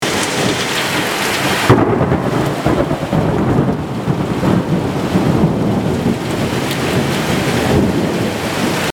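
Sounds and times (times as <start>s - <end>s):
rain: 0.0s - 8.9s
thunder: 0.4s - 8.9s.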